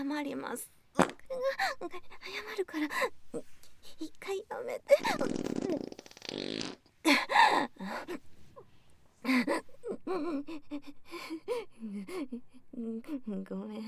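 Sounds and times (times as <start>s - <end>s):
speech: 0.0s - 8.3s, 9.2s - 13.8s
long buzzing fart noise: 1.0s - 1.3s, 5.0s - 6.9s.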